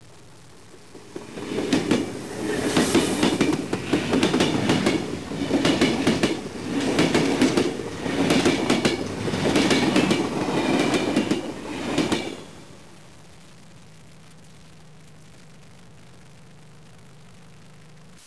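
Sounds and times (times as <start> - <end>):
train passing by: 0.8 - 13.0.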